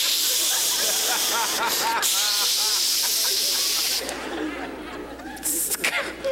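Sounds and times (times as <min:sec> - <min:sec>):
person imitating the hiss of an insecticide spray can: 0:00.0 - 0:04.1, 0:05.4 - 0:05.9
chuckling laughter: 0:00.0 - 0:06.3.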